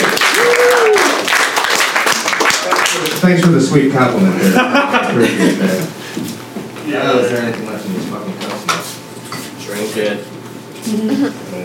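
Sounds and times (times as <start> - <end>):
audience applauding for comedian: 0.0 - 3.6
whoop or whistle: 0.3 - 1.2
speech: 3.2 - 8.5, 10.0 - 11.6
laughter: 4.2 - 6.2.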